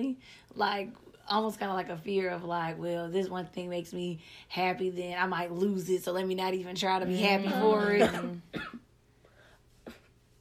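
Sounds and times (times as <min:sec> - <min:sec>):
speech: 0:00.0 - 0:08.8
suppressed coughs of a sick person: 0:07.9 - 0:08.9.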